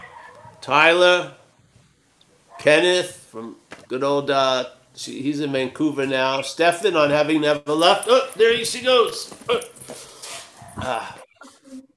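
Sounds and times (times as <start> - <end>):
dog barking excitedly: 0.0 - 0.6, 2.5 - 2.8
speech: 0.7 - 1.4, 2.6 - 10.1, 10.8 - 11.2.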